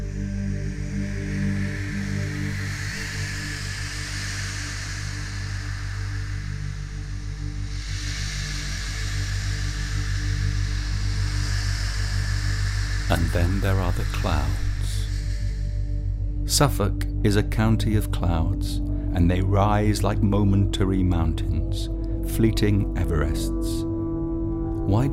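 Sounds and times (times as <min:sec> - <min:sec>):
surf hissing on a beach at Kessingland Suffolk at night: 0:00.0 - 0:15.2
low even hum: 0:00.0 - 0:25.1
speech: 0:13.4 - 0:14.6, 0:16.5 - 0:23.9, 0:24.9 - 0:25.1.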